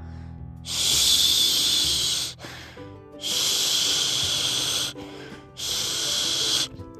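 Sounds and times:
person snoring with harsh airy rasps: 0.7s - 2.4s, 3.2s - 5.0s, 5.6s - 6.7s.

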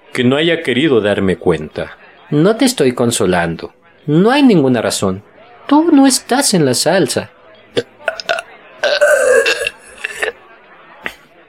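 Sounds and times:
speech: 0.2s - 9.0s
loud drawn-out burp: 7.8s - 10.4s
mouth clicks and smacking: 7.8s - 10.4s.

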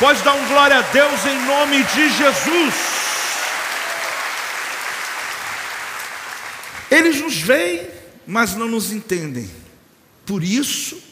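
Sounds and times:
speech: 0.0s - 3.0s, 6.9s - 9.6s, 10.3s - 11.1s
audience applauding: 0.0s - 7.2s.

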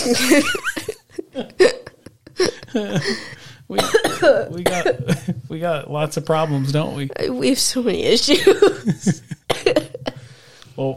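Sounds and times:
speech: 0.0s - 1.8s, 2.8s - 3.8s, 4.6s - 9.2s
person having a coughing fit: 3.8s - 5.3s, 9.5s - 10.3s.

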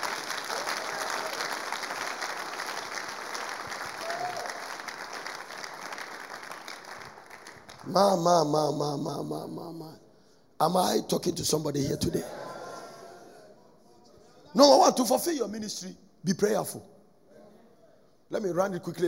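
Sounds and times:
large group clapping in a dense sustained patter of applause: 0.0s - 7.9s
speech: 7.9s - 10.0s, 10.6s - 12.4s, 14.6s - 16.9s, 18.3s - 19.0s.

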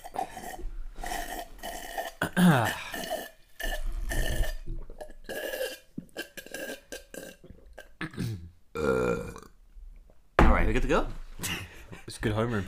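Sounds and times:
loud drawn-out gurgling croaky burp: 0.0s - 9.6s
speech: 2.4s - 2.8s, 10.7s - 11.6s, 12.2s - 12.6s.

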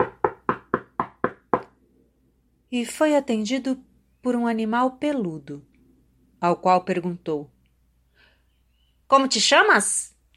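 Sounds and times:
firm knocks on a wooden door: 0.0s - 1.7s
speech: 2.7s - 5.7s, 6.4s - 7.5s, 9.1s - 10.1s.

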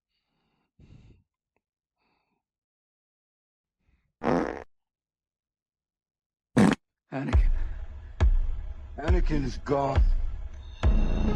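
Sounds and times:
loud buzzy rumbling farts: 4.2s - 4.7s, 6.6s - 6.8s
speech: 7.1s - 7.6s, 9.0s - 10.2s.

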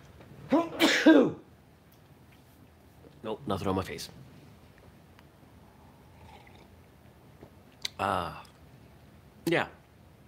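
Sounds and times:
sneeze: 0.5s - 1.4s
speech: 0.5s - 1.4s, 3.2s - 4.3s, 8.0s - 8.5s, 9.5s - 9.8s.

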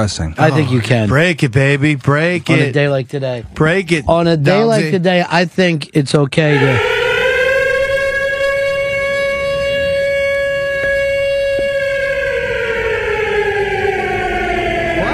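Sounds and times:
speech: 0.0s - 7.0s
siren wailing: 6.5s - 15.1s.

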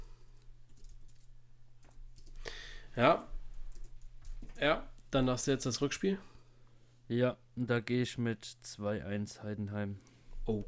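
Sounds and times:
low steady hum: 0.0s - 10.6s
typing on a computer keyboard: 0.3s - 2.4s, 3.7s - 4.6s
speech: 3.0s - 3.3s, 4.6s - 6.3s, 7.1s - 10.6s.

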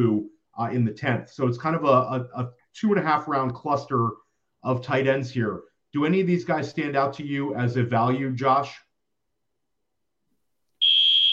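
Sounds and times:
speech: 0.0s - 8.8s
fire alarm blaring a shrill steady high-pitched tone during a test: 10.8s - 11.3s.

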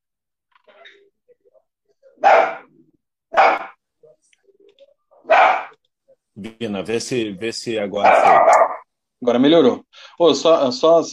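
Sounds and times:
faint small noises: 0.4s - 9.2s
speech: 2.1s - 2.7s, 6.4s - 11.1s
dog barking: 2.2s - 2.7s, 3.3s - 3.8s, 5.2s - 5.8s, 8.0s - 8.9s.

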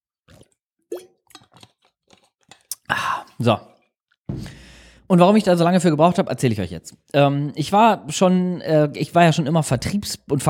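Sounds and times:
person sipping and swallowing a drink: 0.3s - 5.0s
speech: 3.4s - 3.7s, 5.1s - 10.4s.

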